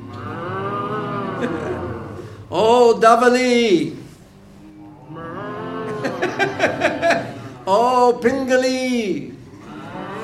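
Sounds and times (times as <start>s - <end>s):
cows mooing: 0.0s - 2.4s, 4.8s - 6.4s, 9.6s - 10.2s
laughter: 0.8s - 2.3s, 5.4s - 7.7s
speech: 1.4s - 1.7s, 2.5s - 4.0s, 6.2s - 9.3s.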